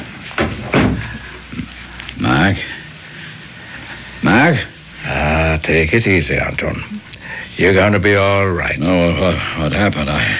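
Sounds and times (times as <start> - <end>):
dressing-room door pulled shut: 0.3 - 1.2
speech: 4.5 - 4.7, 5.7 - 10.3.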